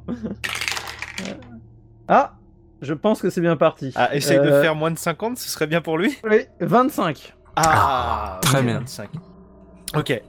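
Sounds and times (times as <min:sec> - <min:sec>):
speech: 0:00.1 - 0:00.5, 0:02.1 - 0:09.3, 0:09.9 - 0:10.2
dice clattering across a hard surface: 0:00.4 - 0:01.4.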